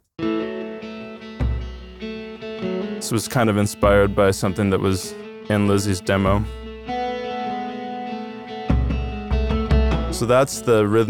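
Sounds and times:
guitar chords on a cheap Martin guitar through a ratty amp with reverb: 0:00.2 - 0:11.0
speech: 0:03.0 - 0:06.6, 0:10.2 - 0:11.0.

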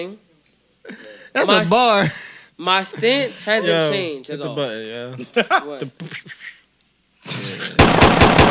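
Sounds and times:
speech: 0:00.0 - 0:06.5, 0:07.2 - 0:08.4
laughter: 0:05.1 - 0:06.6
automatic gunfire sound effect: 0:07.8 - 0:08.4.

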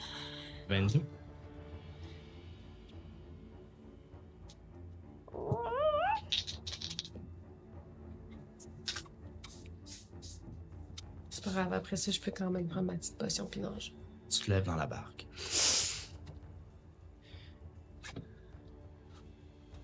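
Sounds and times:
speech: 0:00.7 - 0:01.2, 0:11.6 - 0:15.4
small cat meowing: 0:05.3 - 0:07.1.

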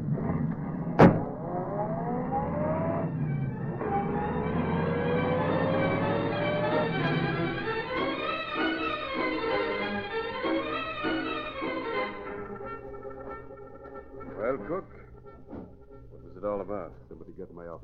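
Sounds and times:
police squad car engine revving and speeding away in pursuit: 0:00.0 - 0:09.3
faint police siren-like wail: 0:00.0 - 0:16.6
car door slamming: 0:01.0 - 0:01.4
speech: 0:16.0 - 0:17.8.

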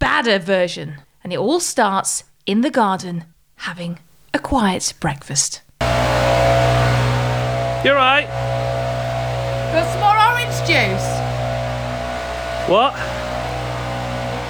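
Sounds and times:
speech: 0:00.2 - 0:06.4, 0:07.8 - 0:08.7, 0:09.7 - 0:11.2, 0:12.7 - 0:13.2
leaf blower running outside during breakfast: 0:05.8 - 0:14.4.

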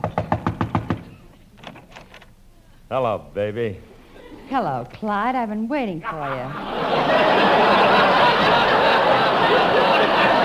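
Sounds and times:
firm knocks on a door: 0:00.0 - 0:01.0
speech: 0:02.9 - 0:03.9, 0:04.5 - 0:10.4
laughter: 0:06.0 - 0:10.4.

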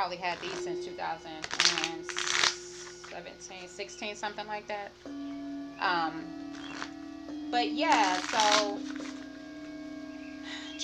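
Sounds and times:
faint steady hum: 0:00.0 - 0:10.8
speech: 0:00.1 - 0:09.1, 0:10.5 - 0:10.8
deck of playing cards being riffle shuffled: 0:00.4 - 0:00.7, 0:01.4 - 0:03.2, 0:07.9 - 0:09.3.

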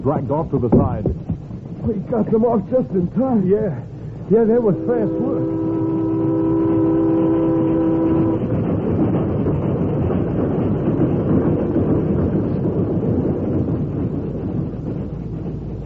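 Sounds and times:
speech: 0:00.0 - 0:05.8
train rumbling past at the entrance to a cut: 0:00.0 - 0:15.8
train horn: 0:04.4 - 0:08.7.

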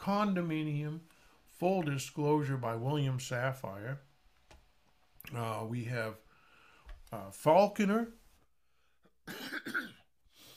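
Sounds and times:
speech: 0:00.0 - 0:04.1, 0:05.2 - 0:06.2, 0:07.1 - 0:08.2, 0:09.3 - 0:09.9
harsh throaty cough: 0:09.2 - 0:10.1.

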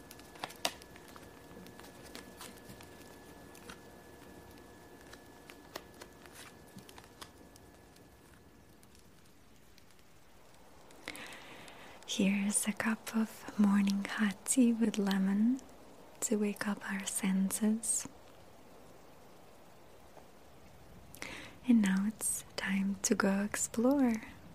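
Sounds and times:
picture cards shuffling and turning by a fire: 0:00.0 - 0:07.6
speech: 0:12.1 - 0:18.2, 0:21.6 - 0:24.4.

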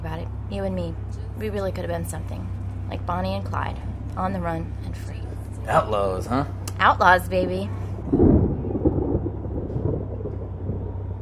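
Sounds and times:
speech: 0:00.5 - 0:08.3
faint rain: 0:07.8 - 0:11.1
rumble of thunder from a storm at night: 0:07.9 - 0:11.1.

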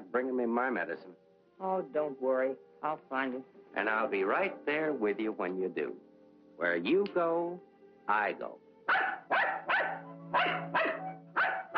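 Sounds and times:
speech: 0:00.1 - 0:09.3
dog barking: 0:08.9 - 0:11.7.

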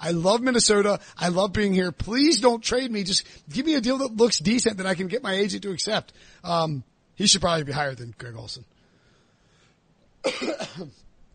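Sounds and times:
speech: 0:00.0 - 0:08.7, 0:10.2 - 0:11.0
harsh cough: 0:10.2 - 0:11.0.

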